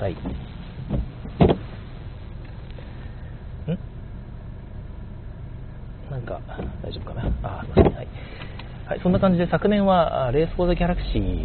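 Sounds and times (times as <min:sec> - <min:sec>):
speech: 0:00.0 - 0:00.6, 0:06.3 - 0:08.3, 0:08.9 - 0:11.4
car windshield wipers thumping across the glass in rain: 0:00.0 - 0:02.6, 0:06.2 - 0:09.7
hum of a car interior in the rain: 0:00.0 - 0:11.4
faint thud: 0:00.2 - 0:01.7.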